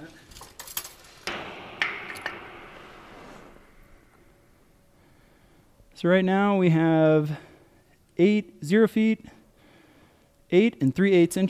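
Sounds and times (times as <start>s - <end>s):
soft steady hiss: 0.0s - 11.4s
weighted tape measure ticking and knocking down a thin fuel tank pipe: 0.5s - 4.7s
speech: 6.0s - 7.5s, 8.2s - 9.4s, 10.5s - 11.4s.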